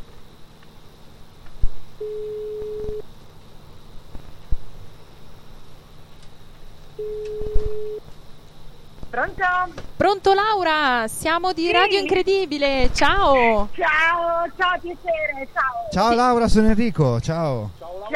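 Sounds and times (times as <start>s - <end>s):
low hiss: 0.0s - 18.1s
telephone ringback tones on an outgoing call: 2.0s - 3.0s, 7.0s - 8.0s
speech: 9.3s - 18.1s.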